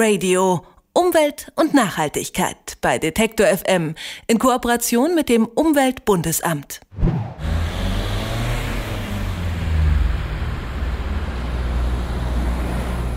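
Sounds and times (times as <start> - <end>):
speech: 0.0 - 7.3
cars passing by: 7.4 - 13.1
low engine drone: 7.4 - 13.1
road traffic rumbling: 7.4 - 13.1.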